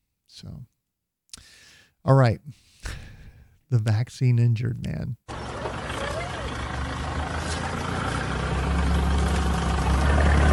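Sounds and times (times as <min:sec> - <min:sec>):
speech: 0:00.3 - 0:00.8, 0:02.0 - 0:02.7, 0:03.7 - 0:05.3
car engine idling: 0:05.3 - 0:10.5.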